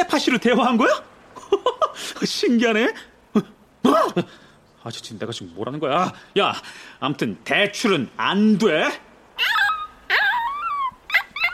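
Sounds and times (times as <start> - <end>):
speech: 0.0 - 9.6
laughter: 1.4 - 2.3
puppy whimpering in wavering whines: 9.4 - 11.5.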